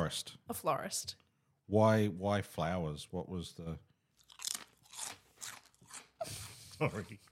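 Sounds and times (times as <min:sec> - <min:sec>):
speech: 0:00.1 - 0:03.9, 0:06.2 - 0:07.2
person chewing potato chips: 0:04.2 - 0:06.2.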